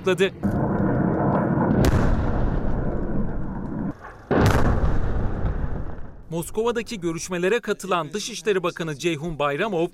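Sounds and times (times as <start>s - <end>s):
speech: 0.0s - 0.6s, 6.3s - 9.9s
rumbling artillery fire: 0.4s - 6.3s
sharp loud blasts: 0.4s - 6.3s
gunfire: 1.0s - 6.2s.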